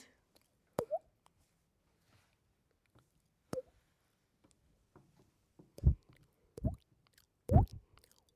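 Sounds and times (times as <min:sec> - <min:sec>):
water drop: 0:00.8 - 0:01.0, 0:07.5 - 0:07.8.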